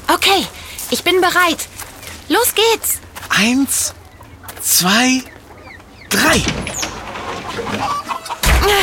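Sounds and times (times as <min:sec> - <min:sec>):
speech: 0:00.2 - 0:04.0, 0:04.6 - 0:05.3, 0:06.1 - 0:06.8, 0:07.6 - 0:08.8
hens clucking and squawking in a coop: 0:00.7 - 0:08.6
coop door slamming shut: 0:06.1 - 0:08.8.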